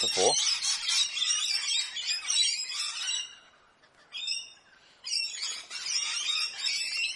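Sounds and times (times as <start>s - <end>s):
speech: 0.0s - 0.6s
parrots squawking in a territorial fight: 0.0s - 3.3s, 5.1s - 7.1s.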